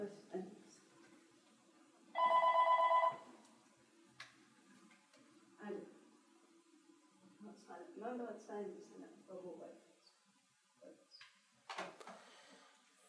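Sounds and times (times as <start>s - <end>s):
telephone ringing: 2.2s - 3.3s.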